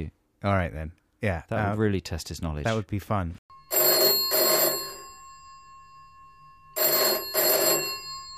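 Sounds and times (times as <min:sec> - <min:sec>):
speech: 0:00.0 - 0:03.5
telephone ringing in a classic trill-ring pattern: 0:03.5 - 0:08.3.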